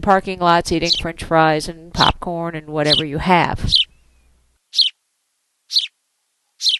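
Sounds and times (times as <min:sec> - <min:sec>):
speech: 0:00.0 - 0:03.8
house sparrow chirping: 0:00.8 - 0:01.1, 0:02.9 - 0:05.0, 0:05.7 - 0:06.0, 0:06.6 - 0:06.7.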